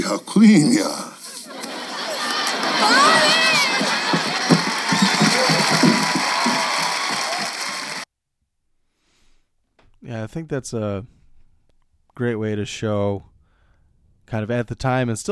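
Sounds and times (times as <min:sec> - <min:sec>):
speech: 0:00.0 - 0:01.1, 0:10.2 - 0:11.2, 0:12.2 - 0:13.3, 0:14.3 - 0:15.2
sitcom laugh track studio audience laughter: 0:01.2 - 0:08.0
scattered whoops: 0:02.2 - 0:08.0.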